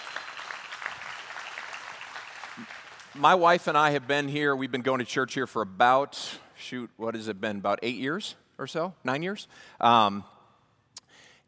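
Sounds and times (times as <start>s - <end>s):
audience applause at a church service: 0.0s - 3.2s
speech: 2.6s - 10.3s.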